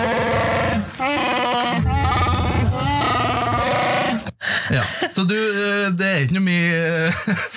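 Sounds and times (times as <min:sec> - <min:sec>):
Wookiee creature growl sound effect: 0:00.0 - 0:04.3
speech: 0:04.7 - 0:07.5.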